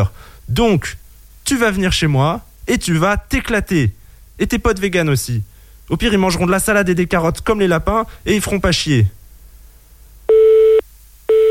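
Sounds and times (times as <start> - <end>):
speech: 0.0 - 9.2
telephone busy tone after the caller hung up: 10.3 - 11.4.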